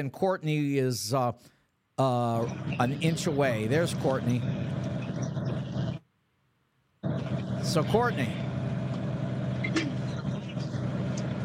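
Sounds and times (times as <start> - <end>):
speech: 0.0 - 4.8, 7.6 - 8.4
loud truck engine rumbling behind a caller: 2.4 - 6.0, 7.0 - 11.4.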